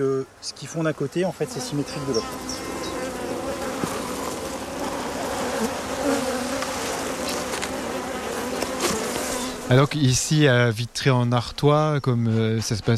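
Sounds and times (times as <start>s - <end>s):
speech: 0.0s - 2.8s, 9.7s - 12.9s
about 2500 honeybees buzzing on an open hive frame in France: 0.5s - 10.2s.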